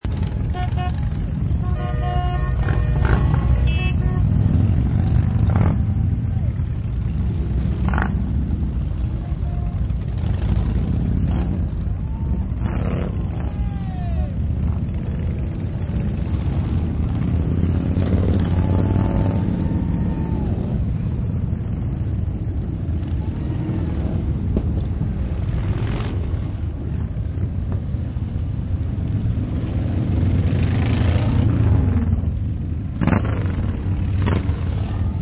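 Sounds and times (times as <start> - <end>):
biker gang motorcycles driving by: 0.0 - 35.2
biker gang horns honking: 0.1 - 5.8, 9.0 - 10.5.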